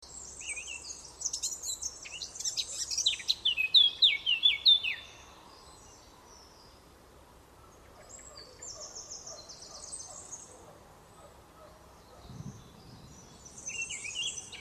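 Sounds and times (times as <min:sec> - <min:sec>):
Eurasian blackcap Sylvia atricapilla song: 0:00.0 - 0:06.8, 0:07.8 - 0:14.5
faint low rumble: 0:12.0 - 0:14.0.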